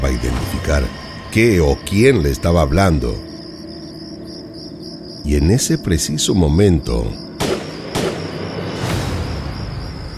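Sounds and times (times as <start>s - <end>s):
speech: 0.0s - 3.3s, 5.2s - 7.3s
gunshots: 7.4s - 8.4s.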